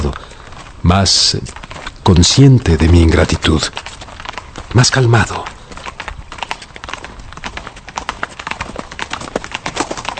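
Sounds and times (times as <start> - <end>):
horse hooves clip-clopping pulling a stagecoach bound for London: 0.0 - 10.1
low rumbling of stagecoach wheels: 0.0 - 10.1
speech: 0.9 - 3.9, 4.7 - 5.5.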